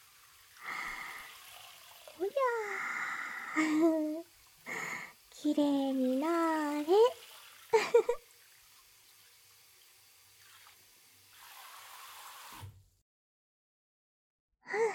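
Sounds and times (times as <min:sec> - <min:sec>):
shower water running: 0:00.0 - 0:12.8
speech: 0:03.6 - 0:04.1, 0:05.4 - 0:07.2.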